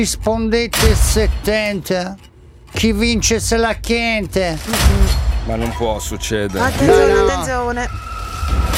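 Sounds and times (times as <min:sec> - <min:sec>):
speech: 0:00.0 - 0:08.6
telephone ringing with a steady electronic tone: 0:06.8 - 0:07.4.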